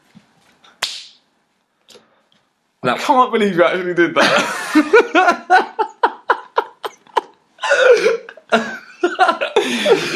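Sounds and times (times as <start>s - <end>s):
faint soft shuffles: 0.0s - 0.7s
loud sharp slap on someone's body: 0.8s - 1.2s
speech: 2.8s - 5.8s, 8.5s - 8.7s
laughter: 4.2s - 10.1s.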